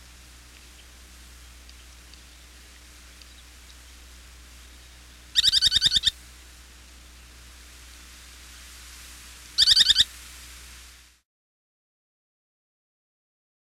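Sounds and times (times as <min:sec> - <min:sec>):
Semipalmated Sandpiper giving harsh pulsed trills: 0:00.0 - 0:06.2, 0:09.6 - 0:10.1
background hiss: 0:00.0 - 0:11.2.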